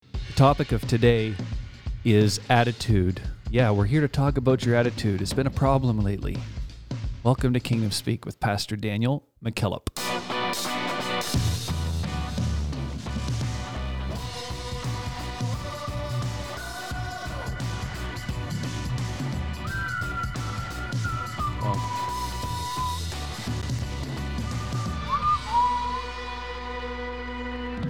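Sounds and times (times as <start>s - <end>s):
speech: 0.4s - 6.6s, 7.2s - 10.0s
instrumental podcast theme tune with bright melody over rhythmic backing: 10.0s - 27.8s.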